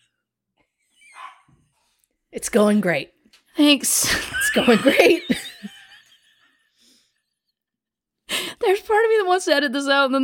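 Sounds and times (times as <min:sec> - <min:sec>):
dog barking: 0:01.0 - 0:01.6
speech: 0:02.4 - 0:05.5, 0:08.7 - 0:10.2
laughter: 0:04.0 - 0:07.1.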